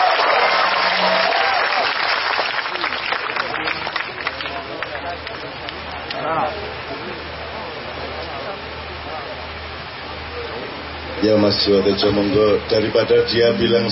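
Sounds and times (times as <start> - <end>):
audience applause at an evening birthday celebration: 0.0 - 6.2
speech: 11.3 - 13.9.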